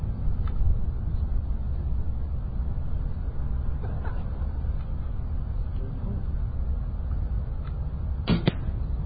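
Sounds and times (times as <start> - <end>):
steady low noise: 0.0 - 9.0
arrows hitting a target at 10 yards during an archery contest: 8.2 - 8.8.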